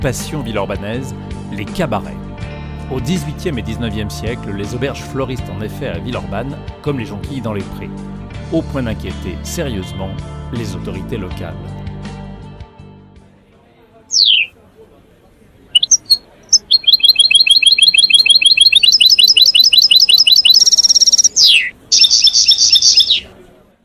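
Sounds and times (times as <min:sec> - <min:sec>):
speech: 0:00.0 - 0:02.2, 0:02.9 - 0:11.9
caged wild goldfinch singing: 0:14.1 - 0:14.5, 0:15.8 - 0:23.3.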